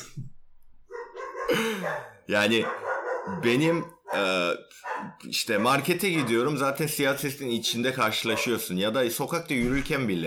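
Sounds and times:
dog yelping: 0:00.9 - 0:04.2, 0:04.8 - 0:06.5
dog barking: 0:00.9 - 0:06.6, 0:08.2 - 0:08.6
speech: 0:01.5 - 0:10.2.

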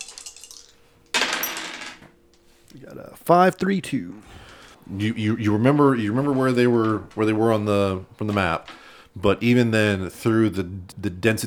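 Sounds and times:
dice tumbling across a hard table surface: 0:00.0 - 0:02.1
speech: 0:02.7 - 0:11.4.

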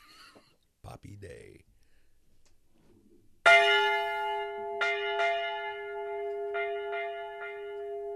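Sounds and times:
speech: 0:00.9 - 0:01.7
church bells ringing: 0:03.4 - 0:08.1.

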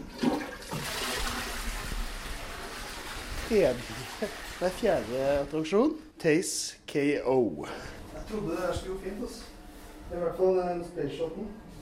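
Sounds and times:
toilet flushing: 0:00.0 - 0:05.9
speech: 0:03.5 - 0:09.5, 0:10.1 - 0:11.6.

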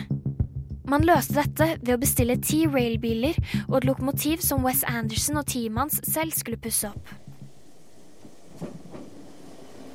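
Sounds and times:
speech: 0:00.9 - 0:07.2
moving train rumbling along its track: 0:07.0 - 0:09.9
train wheels clacking over rail joints: 0:08.0 - 0:09.9.

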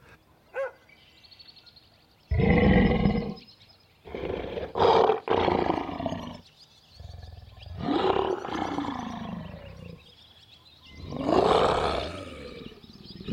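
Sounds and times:
recorded lion snarling and growling: 0:02.3 - 0:03.4, 0:04.0 - 0:06.4, 0:07.0 - 0:10.0, 0:11.0 - 0:13.3.

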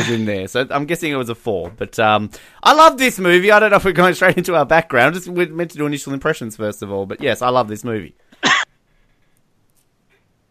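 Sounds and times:
sharp cough: 0:00.0 - 0:00.3, 0:08.4 - 0:08.7
speech: 0:00.1 - 0:08.6.

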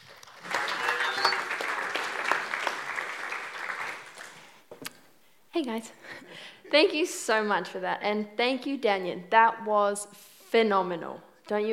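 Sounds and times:
crowd applause: 0:00.0 - 0:04.6
speech: 0:05.6 - 0:11.7.

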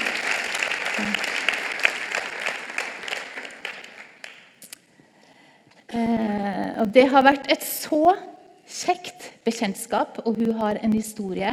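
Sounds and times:
crowd applauding a woman invited forward to speak: 0:00.0 - 0:04.6
speech: 0:01.0 - 0:01.4, 0:06.8 - 0:11.5.

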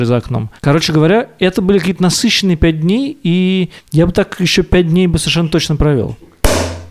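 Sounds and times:
speech: 0:00.0 - 0:06.3
beer bottle being opened: 0:06.5 - 0:06.9.

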